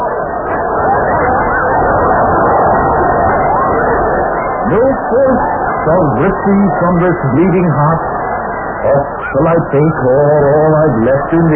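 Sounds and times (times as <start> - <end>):
crowd cheering and shouting: 0.0 - 11.5
speech: 5.8 - 8.2, 8.8 - 11.5.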